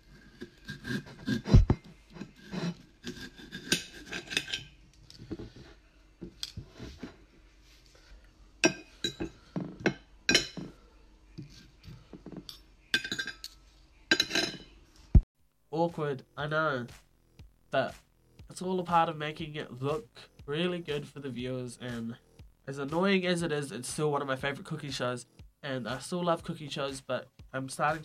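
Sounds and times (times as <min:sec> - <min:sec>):
speech: 0:00.9 - 0:01.6, 0:15.9 - 0:17.1, 0:17.7 - 0:28.0
cutlery clinking on dishes as people eat: 0:08.7 - 0:10.7, 0:12.4 - 0:13.5, 0:14.1 - 0:14.7.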